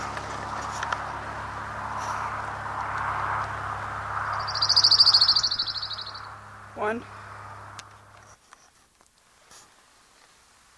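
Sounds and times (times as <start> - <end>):
low hum: 0.0 - 8.3
faint hiss: 0.0 - 10.7
crown warbler singing a high-pitched trilled phrase: 4.2 - 6.9
speech: 6.8 - 7.2.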